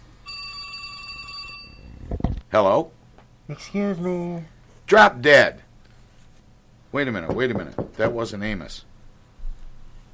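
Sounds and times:
telephone bell ringing: 0.2 - 2.0
speech: 2.5 - 5.6, 6.9 - 8.9.

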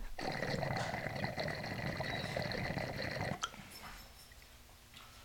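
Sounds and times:
dog burping: 0.2 - 3.5.

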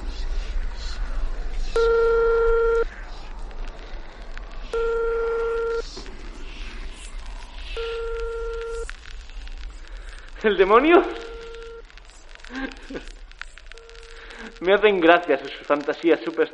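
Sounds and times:
soft steady hiss: 1.6 - 3.2, 4.6 - 5.8, 6.4 - 16.5
unanswered telephone ringback tone: 1.8 - 2.8, 4.8 - 5.8, 7.8 - 8.8
speech: 10.4 - 11.3, 14.6 - 16.5.

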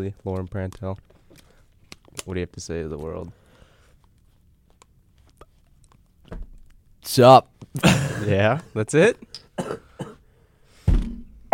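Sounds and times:
speech: 0.0 - 1.2, 2.2 - 3.4, 6.3 - 9.8
person coughing harshly: 7.8 - 8.4, 9.6 - 10.2.

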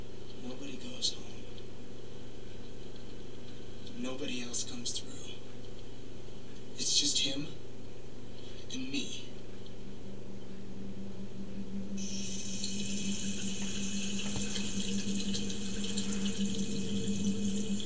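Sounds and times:
speech: 1.0 - 1.2, 4.0 - 5.2, 7.0 - 7.6, 8.7 - 9.3
low hum: 9.8 - 17.8
water running as a wound is rinsed: 12.0 - 17.8.

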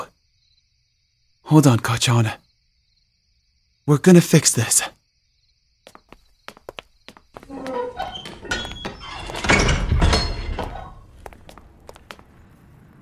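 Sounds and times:
speech: 1.5 - 2.4, 3.9 - 5.0
sharp footsteps: 5.9 - 12.6
door groaning and swinging shut with a heavy rumbling thud: 7.4 - 11.2.

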